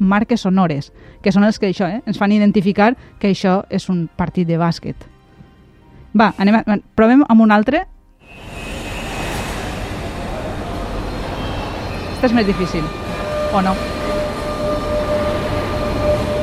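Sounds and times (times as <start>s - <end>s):
speech: 0.1s - 5.1s, 6.1s - 8.6s, 12.2s - 14.0s
faint high whine of train: 8.2s - 16.4s
train rumble at a railway station: 8.2s - 16.4s.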